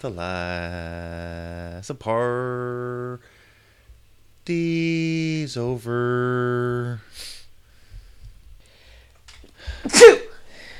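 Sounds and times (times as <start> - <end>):
speech: 0.0 - 3.4, 4.5 - 7.3
person sneezing: 9.6 - 10.4.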